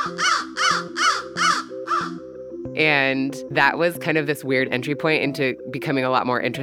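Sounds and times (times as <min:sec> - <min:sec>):
crow cawing: 0:00.0 - 0:02.2
speech: 0:02.8 - 0:06.6.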